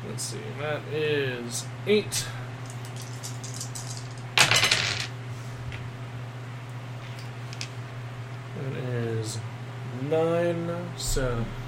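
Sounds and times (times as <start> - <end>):
faint steady hum: 0.0 - 11.6
speech: 0.2 - 2.4, 11.2 - 11.6
many dice clattering across a table during a tabletop roleplaying game: 2.7 - 5.1.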